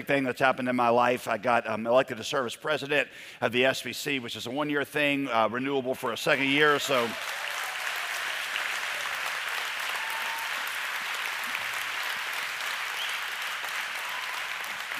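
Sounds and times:
speech: 0:00.0 - 0:07.5
audience applause during a church sermon: 0:06.4 - 0:14.9.

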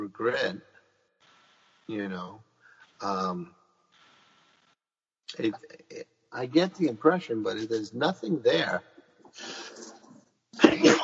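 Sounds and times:
speech: 0:00.1 - 0:00.7, 0:01.9 - 0:03.6, 0:05.3 - 0:10.0
sneeze: 0:10.6 - 0:11.0.

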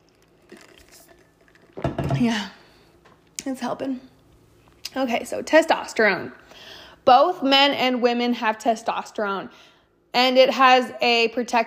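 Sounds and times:
sipping water from a glass: 0:00.0 - 0:01.8
wet slurps and gulps of water: 0:00.0 - 0:01.8
speech: 0:02.2 - 0:02.6, 0:03.4 - 0:04.1, 0:04.9 - 0:11.6.

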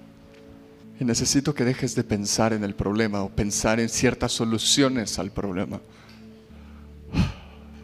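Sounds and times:
speech: 0:01.0 - 0:06.1
soft deep breath in and out: 0:05.9 - 0:07.8.

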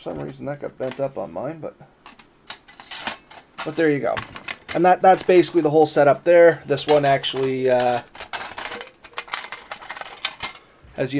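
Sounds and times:
speech: 0:00.0 - 0:02.0, 0:03.6 - 0:08.1, 0:11.0 - 0:11.1
metal cooking grate set onto a smoker firebox: 0:06.9 - 0:10.7.

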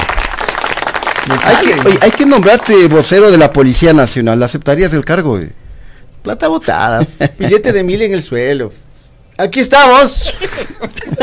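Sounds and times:
applause from a small group: 0:00.0 - 0:03.8
speech: 0:01.3 - 0:05.6, 0:06.2 - 0:08.8, 0:09.4 - 0:11.2
laughter: 0:06.9 - 0:08.0, 0:10.2 - 0:11.2.

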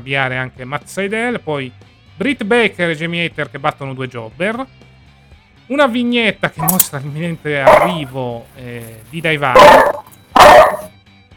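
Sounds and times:
speech: 0:00.0 - 0:04.8, 0:05.7 - 0:10.0
dog barking: 0:07.6 - 0:08.1, 0:09.5 - 0:10.9.

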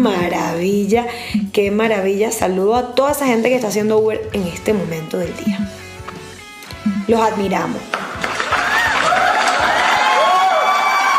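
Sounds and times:
speech: 0:00.0 - 0:05.8, 0:07.1 - 0:08.0
large crowd clapping and cheering: 0:07.9 - 0:11.1.

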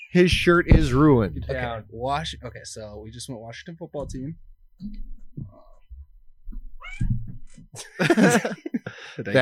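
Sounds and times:
speech: 0:00.1 - 0:05.7, 0:06.9 - 0:09.4
pet cat meowing and yowling: 0:06.8 - 0:07.2
laughter: 0:07.8 - 0:09.4.

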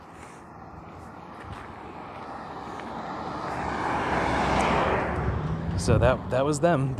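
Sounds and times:
heavy truck engine rumbling as it passes: 0:00.0 - 0:06.9
speech: 0:05.8 - 0:06.9.

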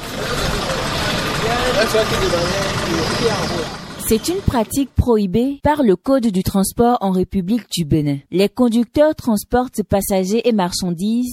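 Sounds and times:
car engine running while parking: 0:00.0 - 0:05.0
speech: 0:01.8 - 0:11.3.

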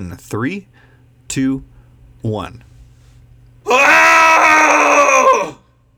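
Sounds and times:
speech: 0:00.0 - 0:02.7
person giving a cathartic full-throated scream: 0:03.7 - 0:05.6.

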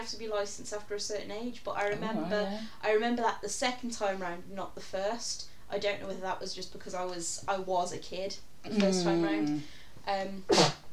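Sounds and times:
speech: 0:00.1 - 0:10.8
person sneezing: 0:10.5 - 0:10.8.

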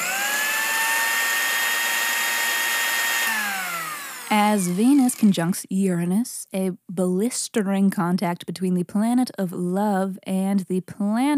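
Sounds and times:
electric blender motor whirring: 0:00.0 - 0:05.6
speech: 0:04.3 - 0:11.3.

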